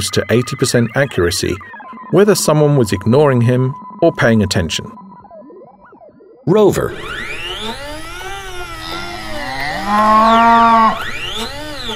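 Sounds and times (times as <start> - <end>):
speech: 0.0 - 5.1, 6.4 - 7.3, 9.9 - 11.2
cow mooing: 9.6 - 11.1.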